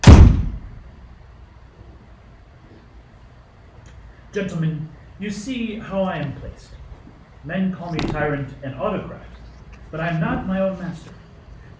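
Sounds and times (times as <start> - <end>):
speech: 4.4 - 6.8, 7.4 - 11.2
heavy door slamming shut: 8.0 - 8.4.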